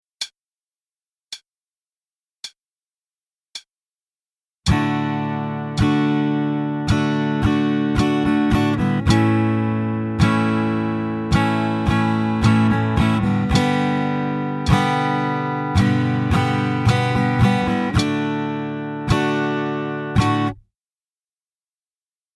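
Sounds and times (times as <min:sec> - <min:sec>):
guitar practice with chord changes and varied strumming techniques: 0:04.7 - 0:20.6.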